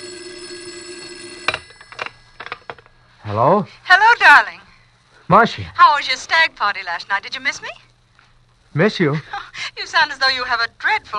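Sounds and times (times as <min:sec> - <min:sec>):
shrill telephone bell ringing: 0:00.0 - 0:02.8
speech: 0:03.3 - 0:04.6, 0:05.3 - 0:07.9, 0:08.8 - 0:11.1.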